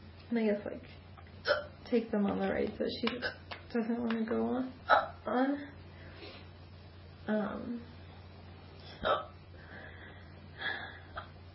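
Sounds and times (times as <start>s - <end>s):
speech: 0.3s - 5.8s, 7.3s - 7.9s, 9.0s - 9.3s
sharp abrupt hiccups: 1.4s - 1.8s, 4.9s - 5.2s, 8.9s - 9.4s.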